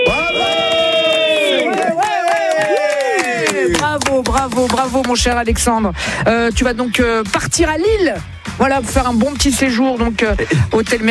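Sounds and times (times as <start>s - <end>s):
man yelling as loudly as he can: 0.0s - 3.8s
other voices and crowd noise: 0.0s - 4.9s
speech: 4.4s - 11.0s.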